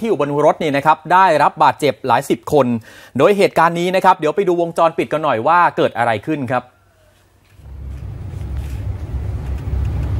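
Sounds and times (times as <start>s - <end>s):
speech: 0.0s - 6.8s
bus engine and road noise on a road to an industrial estate: 7.5s - 10.1s.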